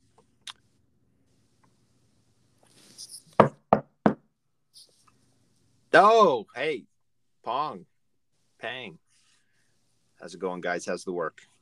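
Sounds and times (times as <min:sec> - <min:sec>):
firm knocking on a door: 0:03.4 - 0:04.3
speech: 0:06.0 - 0:07.9, 0:08.6 - 0:09.0, 0:10.2 - 0:11.5.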